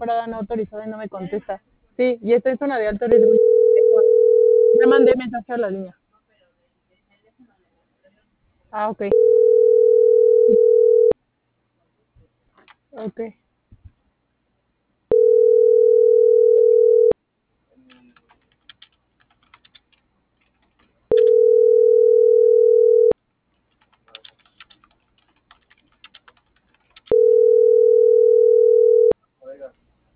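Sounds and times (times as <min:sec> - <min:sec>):
speech: 0:00.0 - 0:06.0, 0:08.7 - 0:09.6, 0:13.0 - 0:13.4
WhatsApp call ringback tone: 0:03.1 - 0:05.2, 0:09.1 - 0:11.2, 0:15.1 - 0:17.2, 0:21.1 - 0:23.2, 0:27.1 - 0:29.2
faint keyboard typing and clicks: 0:17.9 - 0:21.8, 0:22.9 - 0:27.7.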